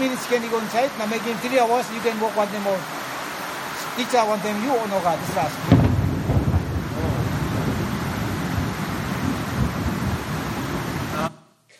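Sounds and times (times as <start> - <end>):
speech: 0.2 - 3.1, 4.0 - 6.4
thunder rumbling amid dense storm noise: 5.1 - 11.2.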